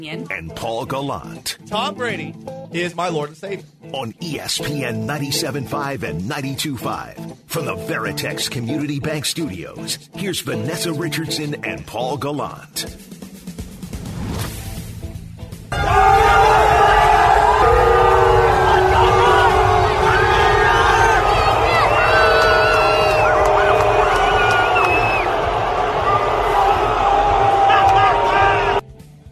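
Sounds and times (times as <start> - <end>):
speech: 0.0 - 13.2
huge stadium crowd in Seattle booing a returning player: 15.7 - 28.8.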